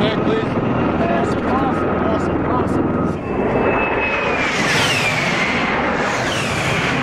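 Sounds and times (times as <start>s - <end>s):
tiltrotor military aircraft rotor and engine roaring past: 0.0s - 7.0s
high whining tones bending downward in pitch: 2.8s - 7.0s.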